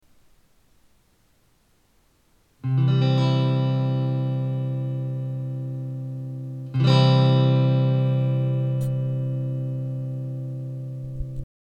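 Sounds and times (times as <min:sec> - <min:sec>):
guitar playing in C major: 0:02.6 - 0:11.4.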